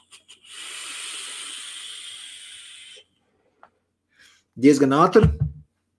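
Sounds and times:
vapor drawn through a vape device with a fairly loose draw: 0.1s - 3.1s
speech: 4.6s - 5.5s.

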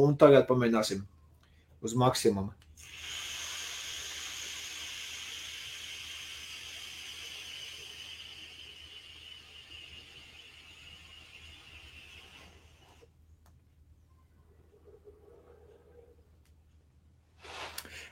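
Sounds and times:
speech: 0.0s - 1.2s, 1.8s - 3.1s
vape coil sizzling during a long inhale at maximum power of 80 watts: 2.8s - 13.1s.

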